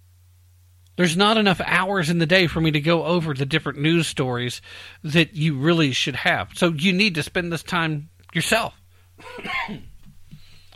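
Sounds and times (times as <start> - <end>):
low steady hum: 0.0 - 10.7
speech: 1.0 - 9.9
person clearing throat: 9.2 - 10.0
person coughing: 9.2 - 10.0.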